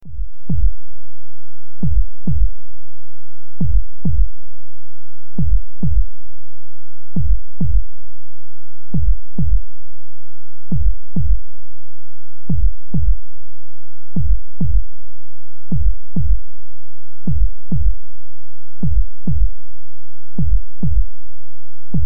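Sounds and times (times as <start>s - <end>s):
heartbeat speeding up: 0.0s - 1.0s, 1.7s - 2.8s, 3.5s - 4.5s, 5.3s - 6.3s, 7.1s - 8.1s, 8.9s - 9.8s, 10.7s - 11.6s, 12.4s - 13.4s, 14.2s - 15.0s, 15.6s - 16.6s, 17.2s - 18.1s, 18.8s - 19.7s, 20.3s - 22.0s.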